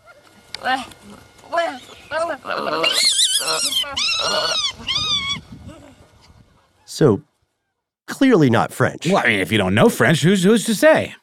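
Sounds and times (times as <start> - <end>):
speech: 0.6 - 5.2, 7.0 - 7.3, 8.2 - 11.2
monkey chattering in shrill squeaky calls and screechy cries: 1.8 - 5.4.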